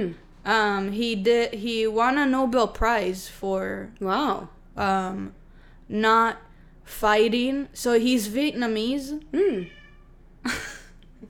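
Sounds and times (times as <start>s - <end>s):
speech: 0.0s - 9.8s, 10.4s - 11.2s
cat meowing loudly: 9.5s - 10.2s.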